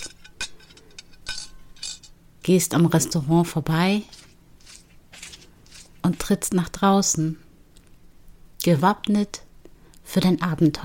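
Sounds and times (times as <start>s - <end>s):
dishes and cutlery being cleared away: 0.0s - 2.1s
speech: 2.4s - 4.2s, 6.1s - 7.4s, 8.6s - 9.4s, 10.1s - 10.8s.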